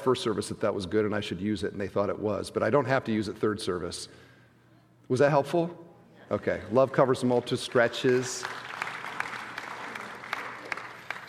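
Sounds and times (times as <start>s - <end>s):
speech: 0.0s - 4.3s, 5.1s - 8.6s
room full of people clapping: 6.4s - 11.2s.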